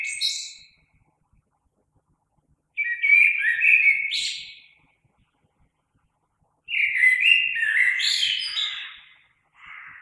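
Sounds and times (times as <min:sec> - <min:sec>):
common blackbird warbling song: 0:00.0 - 0:00.8, 0:02.8 - 0:04.8, 0:06.7 - 0:10.0.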